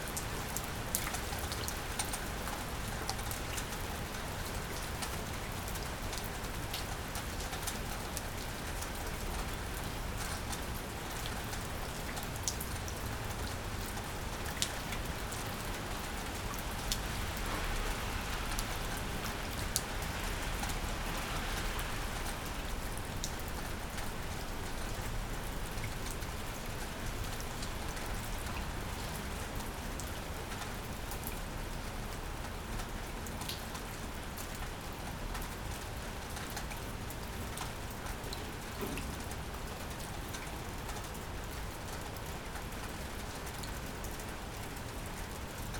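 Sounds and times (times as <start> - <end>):
rain heard from a shelter: 0.0 - 45.7.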